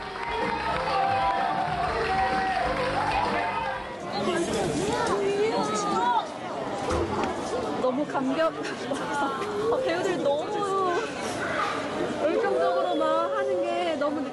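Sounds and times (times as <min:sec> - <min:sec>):
large audience applause in a standing ovation: 0:00.0 - 0:04.0
excited crowd voices: 0:00.0 - 0:14.3
speech: 0:08.2 - 0:10.6, 0:12.2 - 0:14.3.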